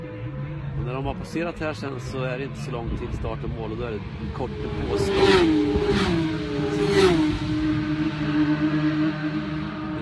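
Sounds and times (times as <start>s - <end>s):
racing car engines roaring out after a refuelling stop: 0.0s - 9.9s
speech: 0.9s - 7.5s.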